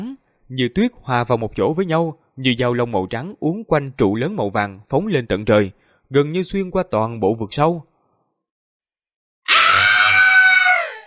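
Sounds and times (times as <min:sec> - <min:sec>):
speech: 0:00.5 - 0:07.9
monster letting out a long shrill vicious scream: 0:09.5 - 0:11.0.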